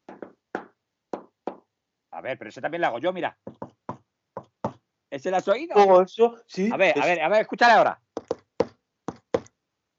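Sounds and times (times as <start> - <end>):
knuckles knocking on a wooden counter: 0.0 - 1.7, 3.4 - 4.8, 8.2 - 9.5
speech: 2.2 - 3.6, 5.1 - 8.0.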